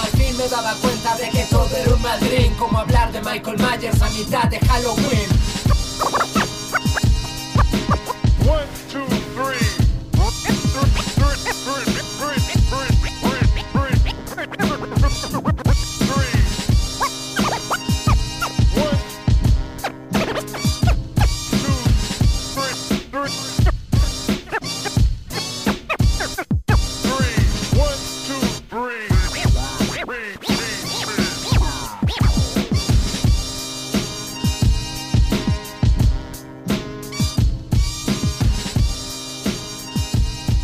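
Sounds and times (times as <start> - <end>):
hip-hop instrumental intro of a rap demo tape: 0.0 - 40.6
speech: 0.5 - 5.4
scratchy turntable-like textures: 4.8 - 8.4, 10.2 - 19.1, 19.8 - 22.9, 23.5 - 27.8, 29.1 - 33.2.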